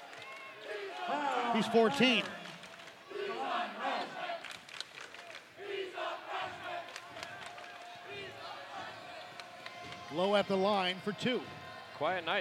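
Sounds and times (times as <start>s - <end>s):
large indoor basketball crowd roaring and cheering: 0.0s - 4.6s, 5.4s - 12.3s
speech: 1.1s - 2.4s, 10.1s - 12.3s.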